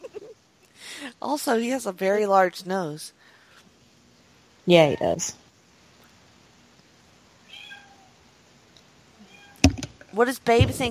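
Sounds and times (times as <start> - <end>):
steady hiss: 0.0 - 10.8
speech: 1.0 - 3.2, 4.7 - 5.4, 10.2 - 10.8
cat meowing: 7.4 - 8.2, 9.2 - 9.7.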